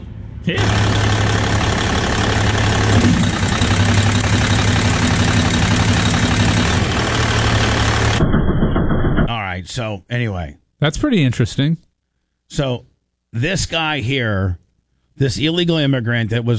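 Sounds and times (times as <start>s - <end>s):
truck engine running with pistons manually activated with a pick: 0.0s - 9.3s
speech: 0.4s - 1.1s, 9.8s - 11.8s, 12.5s - 14.6s, 15.2s - 16.5s.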